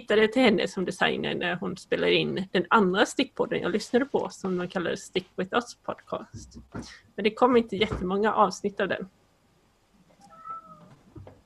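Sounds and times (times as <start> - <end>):
speech: 0.0 - 9.2
cat giving a drawn-out meow: 10.2 - 11.0.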